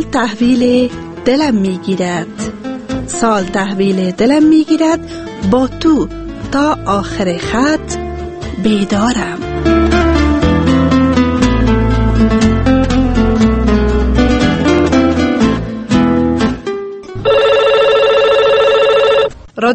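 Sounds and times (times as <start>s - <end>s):
speech: 0.0s - 10.0s
music with a heavy bass line: 5.0s - 16.7s
electronic telephone ringing: 17.2s - 19.4s.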